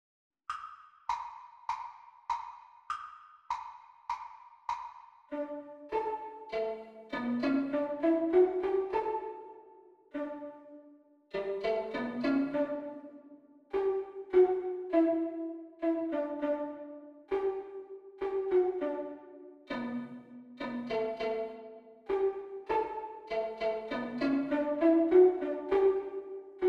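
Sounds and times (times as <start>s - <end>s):
violin duet: 5.3s - 9.5s, 11.3s - 13.2s, 13.8s - 17.6s, 18.2s - 26.6s.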